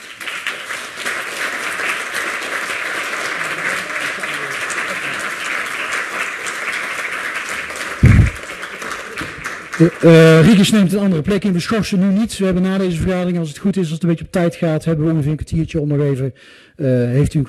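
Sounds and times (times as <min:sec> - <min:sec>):
council members applauding in a room: 0:00.0 - 0:11.0
speech: 0:09.8 - 0:17.4.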